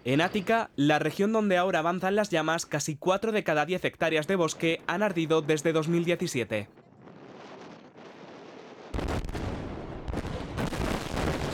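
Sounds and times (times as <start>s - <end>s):
speech: 0.0s - 6.8s
sharp cracks and debris-like crackling: 4.4s - 11.5s
heavy blast of controlled explosion in a riverbed: 6.7s - 11.5s.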